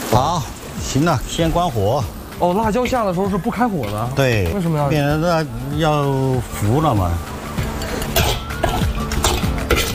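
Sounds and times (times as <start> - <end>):
continuous low sizzling hiss of spices in a wok: 0.0 - 7.9
speech: 0.1 - 7.3
spatula scraping and tossing a spice mix around a wok: 7.4 - 9.9.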